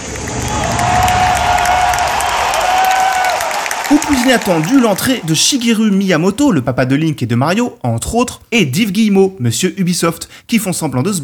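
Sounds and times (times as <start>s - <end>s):
large indoor conference audience cheering and screaming: 0.0s - 5.8s
dense applause: 0.0s - 5.9s
shrill whistles: 0.4s - 5.6s
speech: 3.9s - 11.2s.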